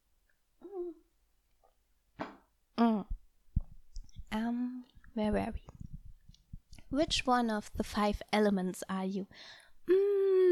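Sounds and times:
person humming: 0:00.6 - 0:01.0, 0:02.8 - 0:03.2, 0:09.9 - 0:10.4
speech: 0:02.8 - 0:03.1, 0:05.2 - 0:05.7, 0:06.9 - 0:09.6.

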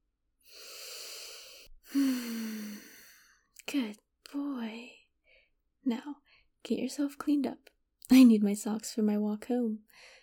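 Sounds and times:
deep breath in through the nose: 0:00.4 - 0:03.4
speech: 0:03.7 - 0:04.9, 0:05.9 - 0:10.2.

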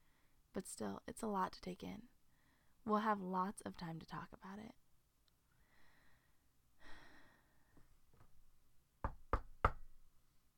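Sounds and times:
speech: 0:00.6 - 0:02.1, 0:02.8 - 0:04.8
soft breathy sounds: 0:05.5 - 0:08.0
knocking on a door: 0:09.0 - 0:10.0.

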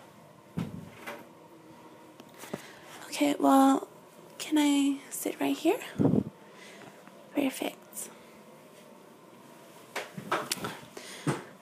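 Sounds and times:
door shutting with a muffled thump: 0:00.6 - 0:01.2
speech: 0:03.2 - 0:03.9, 0:04.5 - 0:06.2, 0:07.4 - 0:07.7.

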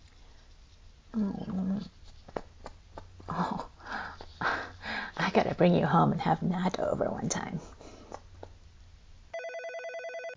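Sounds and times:
low noise: 0:00.0 - 0:10.3
speech: 0:05.6 - 0:07.8
telephone with electronic ring: 0:09.3 - 0:10.3.

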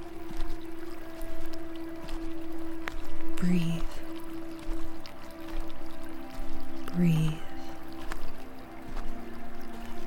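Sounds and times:
brook water babbling and trickling: 0:00.0 - 0:10.0
low sustained humming drone: 0:00.0 - 0:10.0
speech: 0:03.4 - 0:03.9, 0:07.0 - 0:07.3.

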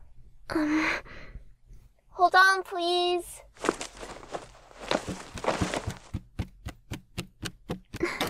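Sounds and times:
speech: 0:00.5 - 0:01.3, 0:02.1 - 0:03.7
heavy footsteps thumping down a staircase to a door: 0:03.6 - 0:08.2.

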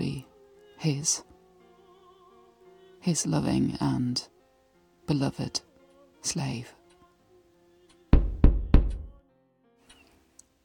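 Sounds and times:
speech: 0:00.8 - 0:01.3, 0:03.0 - 0:04.3, 0:05.1 - 0:06.8
firm knocks on a door: 0:08.1 - 0:09.2.

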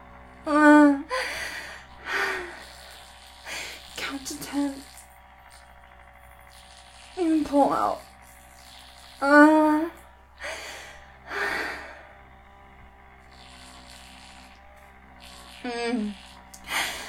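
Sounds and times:
person panting heavily: 0:01.0 - 0:04.0, 0:10.4 - 0:12.2, 0:16.6 - 0:17.0
speech: 0:04.2 - 0:04.9, 0:07.2 - 0:08.0, 0:09.2 - 0:09.5.

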